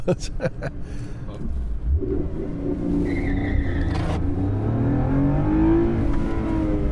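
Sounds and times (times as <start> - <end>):
race car engine roaring while warming up its tyres before the start: 1.3 - 6.9.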